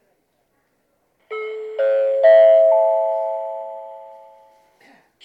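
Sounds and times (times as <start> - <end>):
Kodama train at a station in Nagoya: 1.3 - 4.6.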